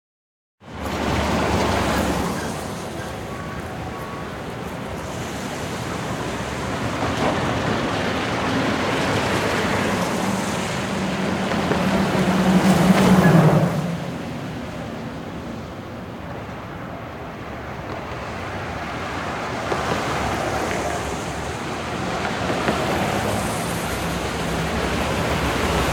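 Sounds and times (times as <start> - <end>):
medium midday city traffic: 0.6 - 25.9.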